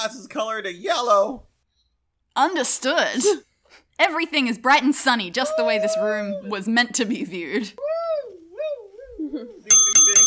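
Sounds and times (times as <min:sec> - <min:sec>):
speech: 0:00.0 - 0:01.5, 0:02.4 - 0:08.0
bell clanging: 0:09.7 - 0:10.2.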